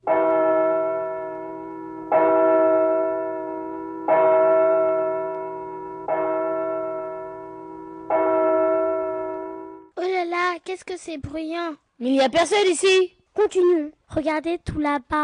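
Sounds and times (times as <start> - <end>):
church bell tolling: 0.0 - 10.0
speech: 10.7 - 15.2.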